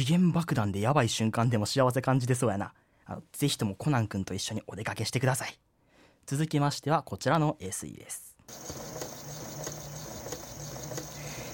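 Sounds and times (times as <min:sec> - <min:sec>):
speech: 0:00.0 - 0:09.0
sewing machine stitching: 0:08.7 - 0:11.5.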